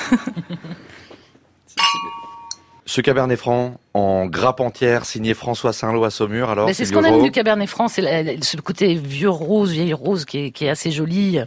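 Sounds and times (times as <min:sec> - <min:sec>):
speech: 0:00.1 - 0:01.0, 0:02.9 - 0:11.4
wine glasses clinking in a toast: 0:01.8 - 0:02.8.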